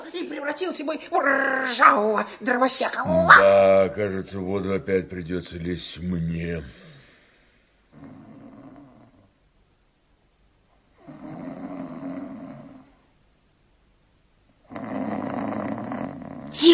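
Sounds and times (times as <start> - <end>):
speech: 0.4 - 6.9
snoring: 7.9 - 9.3, 10.9 - 13.1, 14.7 - 16.6.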